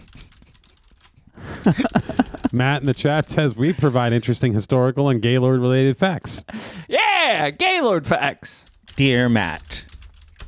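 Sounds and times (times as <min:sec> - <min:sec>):
typing on an unplugged computer keyboard: 0:00.0 - 0:03.0, 0:08.6 - 0:10.4
laughter: 0:01.4 - 0:04.6
speech: 0:01.6 - 0:09.9.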